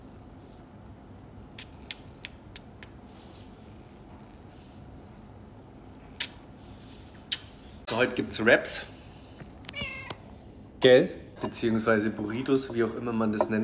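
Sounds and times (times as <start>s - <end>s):
cat purring: 0.0s - 7.0s
speech: 8.0s - 8.9s, 10.8s - 13.6s.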